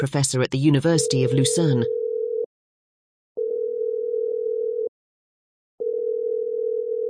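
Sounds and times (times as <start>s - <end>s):
speech: 0.0s - 2.0s
telephone ringing tone on the line: 1.0s - 2.5s, 3.4s - 4.9s, 5.8s - 7.0s.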